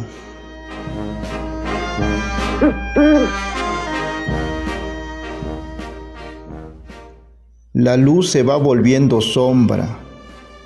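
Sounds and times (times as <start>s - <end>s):
speech: 2.0s - 3.6s, 7.8s - 10.0s
music with plucked and sustained tones and sharp percussive accents: 2.1s - 4.0s
owl hooting: 2.6s - 3.5s.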